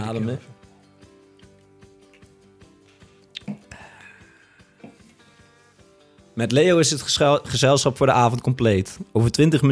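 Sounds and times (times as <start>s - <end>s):
speech: 0.1s - 0.6s, 6.4s - 9.6s
sip and swallow of beer: 3.2s - 3.8s.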